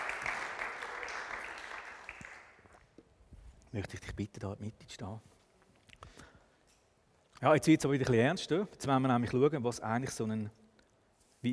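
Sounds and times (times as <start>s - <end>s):
audience applause: 0.0s - 2.6s
speech: 3.7s - 5.4s, 7.4s - 10.6s.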